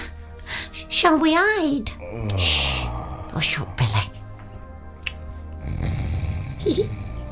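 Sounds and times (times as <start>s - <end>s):
speech: 1.0s - 2.6s, 3.4s - 3.8s
sleeping man snoring loudly: 2.0s - 3.3s, 5.6s - 7.2s.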